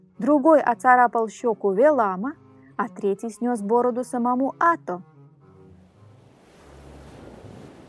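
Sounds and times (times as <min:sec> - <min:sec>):
speech: 0:00.2 - 0:05.1
rough stormy sea waves churning: 0:05.8 - 0:07.8
wind-like hiss: 0:06.3 - 0:07.8.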